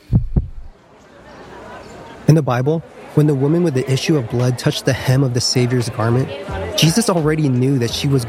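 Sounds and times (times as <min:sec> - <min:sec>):
heartbeat sound effect: 0:00.0 - 0:00.7
speech: 0:02.3 - 0:08.2.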